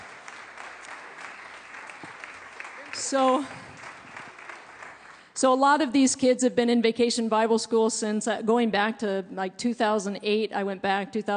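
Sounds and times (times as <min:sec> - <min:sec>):
sizable audience applause: 0:00.0 - 0:05.3
speech: 0:03.0 - 0:03.6, 0:05.4 - 0:11.3.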